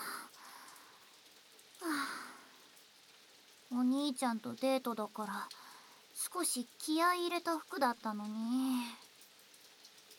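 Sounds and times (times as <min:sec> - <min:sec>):
steady rain hissing: 0:00.0 - 0:10.1
breathy human sigh: 0:01.8 - 0:02.6
speech: 0:03.7 - 0:05.6, 0:06.3 - 0:09.0.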